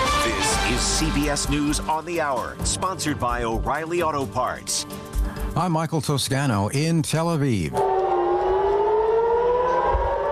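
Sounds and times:
speech: 0:00.7 - 0:08.0
air raid siren wailing during missile attacks in Israel: 0:07.8 - 0:10.3.

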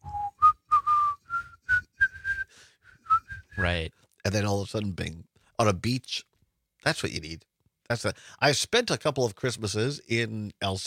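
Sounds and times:
person whistling a short simple tune imitating a beer ad: 0:00.0 - 0:03.7
speech: 0:03.6 - 0:10.8.

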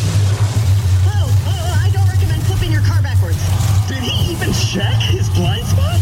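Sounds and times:
monster truck engine roaring at a rally: 0:00.0 - 0:06.0
excited voices shouting: 0:03.4 - 0:06.0.

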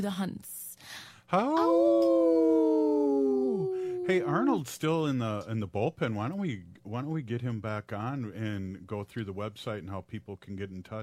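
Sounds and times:
speech: 0:00.0 - 0:11.0
Minnesota wolf howling: 0:01.4 - 0:04.4.

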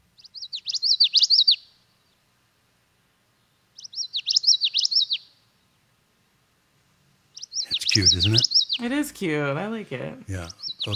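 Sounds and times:
common yellowthroat singing: 0:00.1 - 0:02.3, 0:03.4 - 0:05.8, 0:07.3 - 0:08.9, 0:10.4 - 0:10.9
speech: 0:08.0 - 0:10.9.

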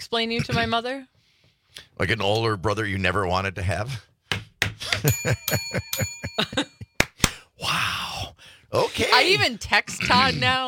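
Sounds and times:
speech: 0:00.0 - 0:04.1, 0:04.8 - 0:06.9, 0:07.6 - 0:10.6
bell ringing: 0:05.1 - 0:07.0.

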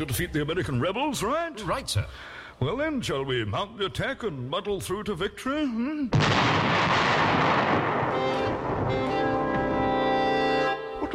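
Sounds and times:
speech: 0:00.0 - 0:09.3
gunfire barrage from troops attacking: 0:06.2 - 0:09.9.

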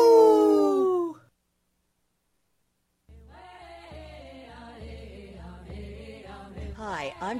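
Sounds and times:
single loud wolf howl: 0:00.0 - 0:01.2
speech: 0:06.8 - 0:07.3.

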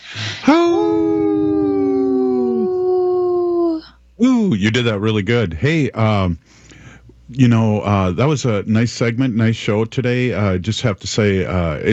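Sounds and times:
breathy rush: 0:00.0 - 0:00.8
speech: 0:00.1 - 0:01.1, 0:04.4 - 0:06.7, 0:07.3 - 0:11.9
person imitating a wolf howl: 0:00.2 - 0:03.9.

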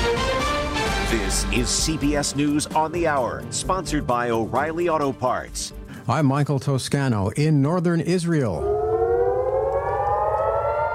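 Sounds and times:
speech: 0:01.1 - 0:08.8
air-raid sirens wailing at night in northern Israel during airstrikes: 0:08.3 - 0:10.9.

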